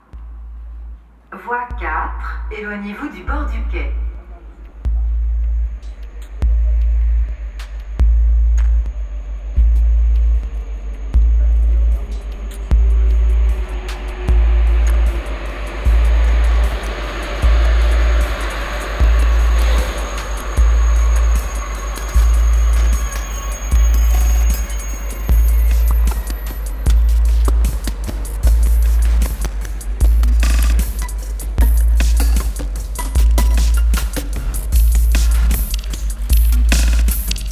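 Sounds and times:
low rhythmic thumping: 0.0 - 37.5
speech: 1.3 - 4.1
TGV high-speed train entering the station: 13.1 - 23.7.

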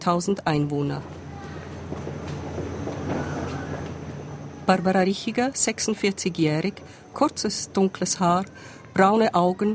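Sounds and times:
speech: 0.0 - 1.2, 4.7 - 9.7
regional train rumbling into station at Neuenburg: 0.7 - 8.5
regional train wheels squeaking: 2.5 - 4.0.

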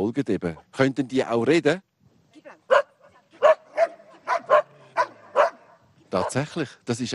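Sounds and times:
speech: 0.0 - 1.9, 6.1 - 7.1
several dogs barking with sharp yips and fuller woofs: 2.7 - 6.5.

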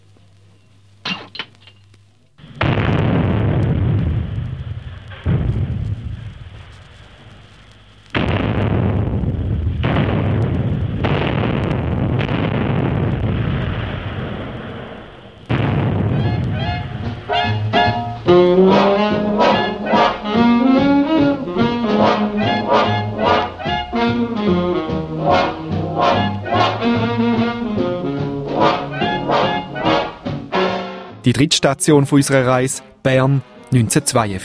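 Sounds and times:
blasting charge detonation explosion: 2.4 - 30.7
crashing bursts of debris: 2.5 - 7.2, 8.1 - 30.7
speech: 31.4 - 34.4.

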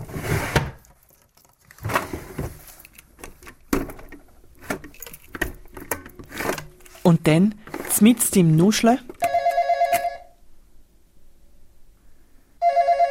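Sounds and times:
rummaging through a small bedside table drawer: 0.0 - 9.5
speech: 7.1 - 9.1
telephone bell ringing: 9.2 - 10.4, 12.6 - 13.0.

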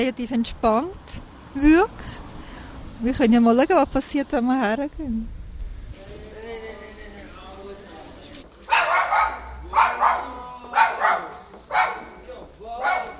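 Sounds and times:
speech: 0.0 - 2.2, 3.0 - 6.1
small dog barking outside a store: 8.7 - 12.2, 12.8 - 13.1.

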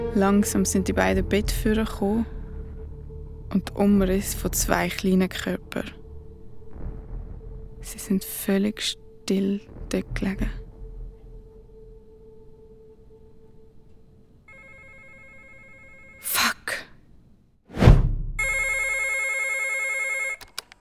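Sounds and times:
speech: 0.1 - 2.3, 3.5 - 6.0, 7.9 - 10.6
telephone ringing: 14.5 - 16.4, 18.4 - 20.5.

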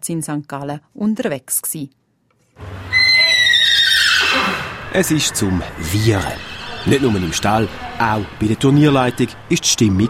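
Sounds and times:
speech: 0.0 - 2.0, 4.9 - 10.0
horse neighing at a rain-soaked show-jumping tournament in St. Gallen: 2.8 - 7.6.

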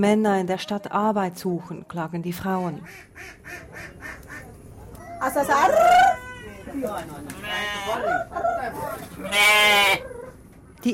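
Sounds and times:
speech: 0.0 - 4.5, 5.2 - 10.1
goats bleating: 7.3 - 8.0, 9.2 - 10.0.

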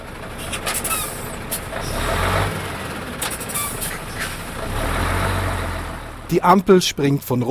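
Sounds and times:
heavy lorry engines rumbling while pulling away in a queue: 0.0 - 7.4
lorry air brakes hissing: 0.4 - 2.0, 3.2 - 4.5
speech: 6.3 - 7.4.

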